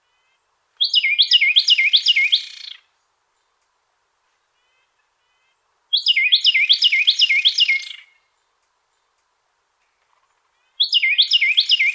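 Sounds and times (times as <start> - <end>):
Carolina wren singing: 0.1 - 3.5, 4.6 - 9.0, 10.6 - 11.9.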